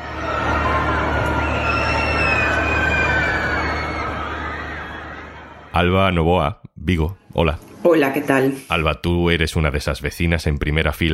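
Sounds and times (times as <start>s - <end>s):
crowd screaming on a fairground Ferris wheel ride: 0.0s - 5.8s
speech: 5.8s - 11.1s.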